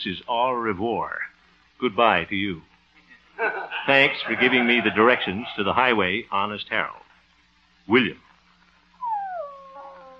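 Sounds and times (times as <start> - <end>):
speech: 0.0 - 2.7, 3.4 - 7.0, 7.9 - 8.2
faint low hum: 0.0 - 10.1
laughter: 3.4 - 6.0
puppy whimpering: 9.0 - 10.1.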